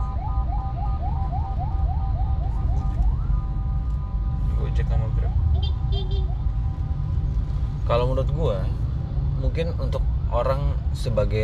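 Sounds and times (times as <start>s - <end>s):
ambulance siren passing by in a rapid yelp: 0.0s - 6.9s
heavy low rumble of traffic: 0.0s - 11.4s
speech: 4.8s - 6.5s, 7.9s - 8.8s, 9.4s - 11.4s.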